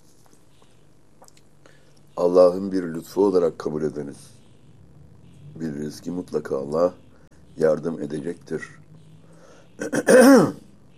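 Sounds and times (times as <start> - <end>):
speech: 2.2 - 4.4, 5.6 - 7.0, 7.6 - 8.8, 9.8 - 10.6
person clearing throat: 9.8 - 10.7.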